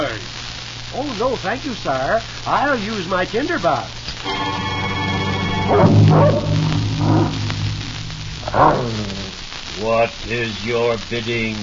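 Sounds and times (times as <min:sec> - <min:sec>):
speech: 0:01.0 - 0:04.7, 0:05.7 - 0:06.5, 0:08.5 - 0:09.2, 0:09.8 - 0:11.6
low sustained musical tone: 0:04.2 - 0:09.2
large dog barking and snarling in an attack: 0:05.7 - 0:07.4.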